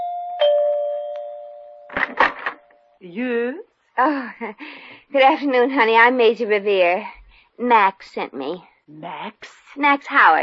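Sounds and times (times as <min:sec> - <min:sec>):
electronic doorbell chime: 0:00.0 - 0:01.9
speech: 0:03.0 - 0:10.4.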